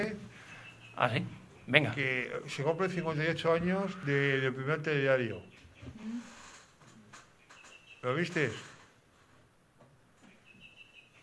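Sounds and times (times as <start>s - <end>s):
speech: 0.0s - 0.3s, 1.0s - 6.4s, 8.0s - 8.7s
bird chirping: 0.0s - 6.1s, 7.3s - 8.6s, 10.2s - 11.2s.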